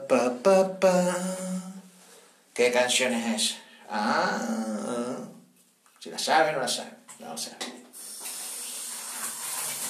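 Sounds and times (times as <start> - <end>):
speech: 0.1 - 1.6, 2.6 - 5.0, 6.0 - 7.8
shower water pouring: 8.0 - 9.8.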